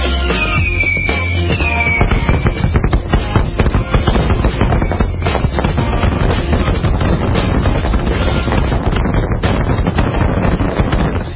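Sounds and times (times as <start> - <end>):
whistling firework rocket streak: 0.2 - 3.0, 4.2 - 5.7
barrage of fireworks crackling and popping: 0.4 - 11.3.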